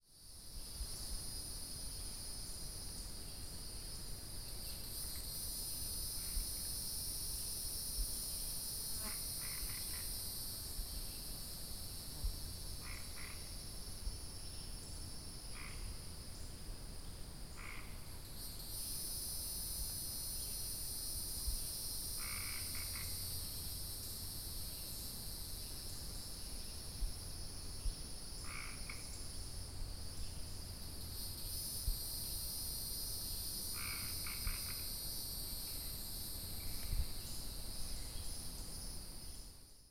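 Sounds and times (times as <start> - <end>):
hieroglyphic cicada chorus: 0.0 - 39.8
Cope's gray treefrogs calling: 12.8 - 13.6, 15.5 - 16.0, 17.5 - 18.1, 28.4 - 29.2, 33.7 - 34.9.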